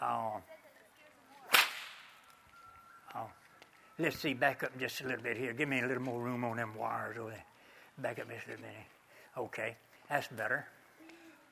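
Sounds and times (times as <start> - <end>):
single sharp loud whip crack: 1.5 - 2.2
speech: 4.0 - 10.8.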